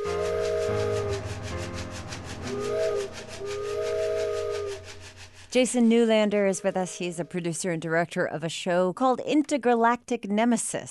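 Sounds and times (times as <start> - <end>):
toy train whistle hooting: 0.0 - 1.4, 2.4 - 5.0, 5.6 - 7.4
speech: 5.5 - 10.8.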